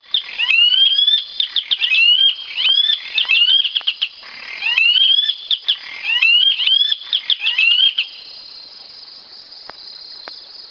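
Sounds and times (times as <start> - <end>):
Pardirallus nigricans Saracura sanã calling: 0.1 - 8.4.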